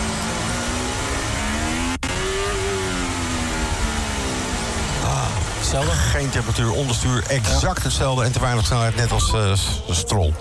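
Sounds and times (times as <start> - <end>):
Formula 1 car engine revving at the Monaco Grand Prix: 0.0 - 10.4
speech: 5.7 - 10.4.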